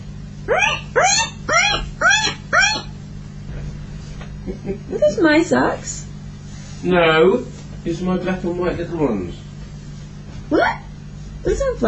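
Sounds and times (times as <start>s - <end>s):
speech: 0.5s - 1.4s, 4.6s - 6.1s, 6.8s - 9.4s, 10.5s - 10.8s, 11.4s - 11.8s
voice imitating guinea pig wheeks: 0.5s - 3.0s.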